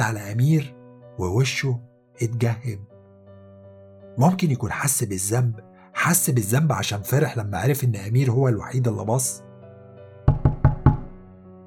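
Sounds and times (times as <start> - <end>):
speech: 0.0 - 2.9, 4.2 - 9.5
knocking on a door: 10.3 - 11.2.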